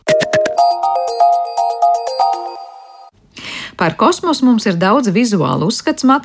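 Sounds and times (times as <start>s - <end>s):
bright bell-like electronic tones from a sonified outer space recording: 0.0s - 3.1s
speech: 3.8s - 6.2s.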